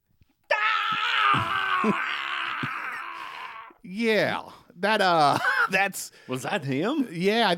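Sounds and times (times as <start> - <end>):
man screaming after cutting his hand off: 0.5 - 4.5
speech: 1.4 - 2.2, 3.9 - 7.5.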